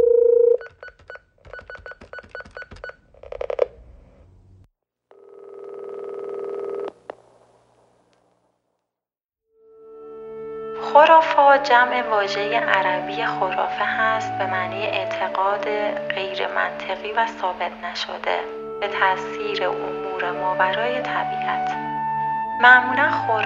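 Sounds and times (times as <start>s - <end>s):
telephone keypad tones dialing: 0.0s - 3.0s, 5.1s - 6.9s
steady telephone ringing tone: 0.0s - 3.6s, 5.1s - 7.0s
speech: 11.6s - 21.9s, 22.6s - 23.4s.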